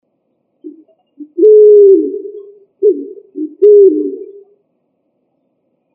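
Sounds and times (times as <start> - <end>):
pigeon cooing: 0.7 - 4.4.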